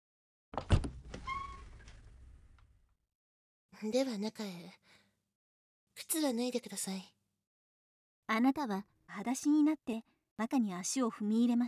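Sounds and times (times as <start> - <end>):
short high creak of the door hinge: 0.6 - 2.2
speech: 3.8 - 5.0, 6.0 - 7.2, 8.3 - 11.6.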